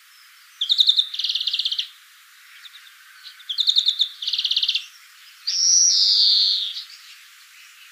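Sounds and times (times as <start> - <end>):
European greenfinch Chloris chloris rattling trills: 0.6 - 1.9, 2.6 - 7.1.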